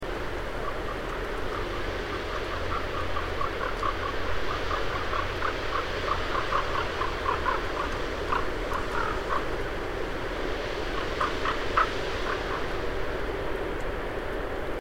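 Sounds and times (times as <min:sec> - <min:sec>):
wind: 0:00.0 - 0:14.7
raven calling: 0:00.4 - 0:09.8, 0:10.8 - 0:13.0.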